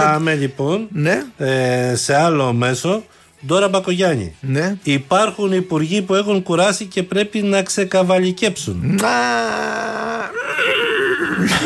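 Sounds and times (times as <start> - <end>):
speech: 0.1 - 11.6
person imitating a horse's quavering whinny: 8.9 - 11.6.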